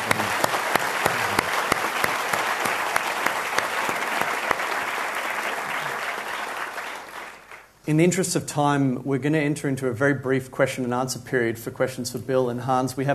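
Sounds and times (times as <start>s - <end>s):
crowd applauding: 0.0s - 7.7s
speech: 7.9s - 13.1s.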